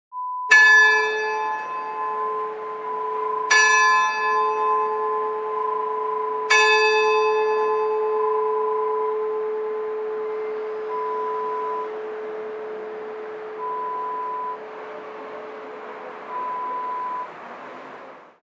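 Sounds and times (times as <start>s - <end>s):
church bell: 0.5s - 16.7s.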